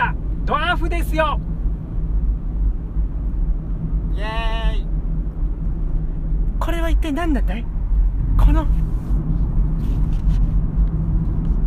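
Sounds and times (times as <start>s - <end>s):
low engine rumble of a car driving: 0.0s - 11.6s
speech: 0.8s - 1.5s, 4.2s - 4.8s, 6.6s - 7.7s, 8.4s - 8.8s.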